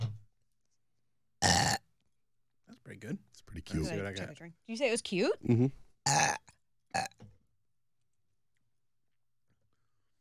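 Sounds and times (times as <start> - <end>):
person burping on command: 1.4 - 1.8, 5.5 - 7.2
speech: 2.9 - 7.1.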